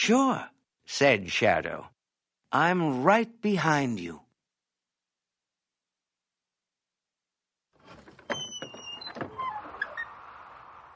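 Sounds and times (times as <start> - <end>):
speech: 0.0 - 1.9, 2.5 - 4.2
door creaking open: 7.8 - 10.9.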